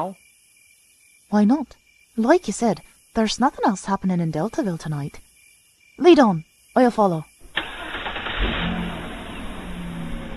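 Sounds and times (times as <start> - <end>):
speech: 0.0 - 0.2, 1.3 - 5.2, 6.0 - 7.3
car engine turning over: 7.4 - 10.3.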